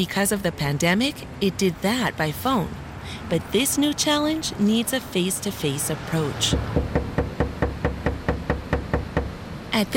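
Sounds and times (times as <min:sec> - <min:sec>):
speech: 0:00.0 - 0:07.0, 0:09.8 - 0:09.9
knocking on an apartment door: 0:06.5 - 0:09.4.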